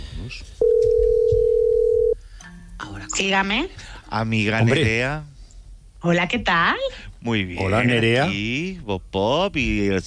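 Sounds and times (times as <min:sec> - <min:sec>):
speech: 0:00.2 - 0:00.6, 0:03.2 - 0:05.3, 0:06.0 - 0:10.0
telephone dial tone as a call is placed: 0:00.6 - 0:02.2.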